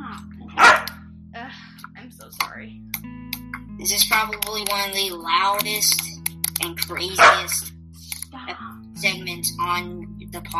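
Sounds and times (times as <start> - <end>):
low hum: 0.0 - 10.5
dog barking: 0.6 - 1.0, 7.2 - 7.6
speech: 3.8 - 7.7, 8.5 - 10.5.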